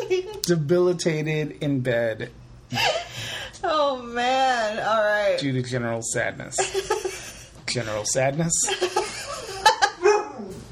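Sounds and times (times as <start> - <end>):
speech: 0.2 - 3.0, 4.2 - 6.9, 7.8 - 9.0
laughter: 6.6 - 7.6, 8.6 - 10.1
pet dogs barking: 9.7 - 10.6.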